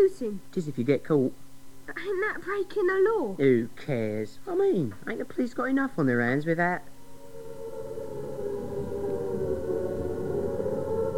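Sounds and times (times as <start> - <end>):
speech: 0.0 - 6.9
air raid sirens wailing: 6.9 - 11.1
low rumbling background: 6.9 - 11.1.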